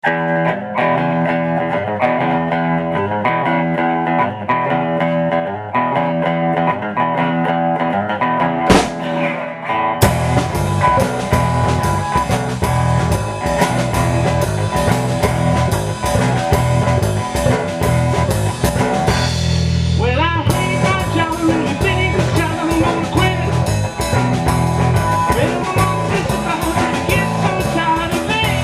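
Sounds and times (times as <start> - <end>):
drums: 0.0 - 28.6.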